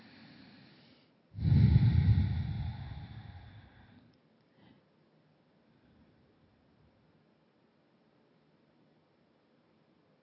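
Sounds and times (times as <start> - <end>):
deep breath during meditation: 0.0 - 4.9.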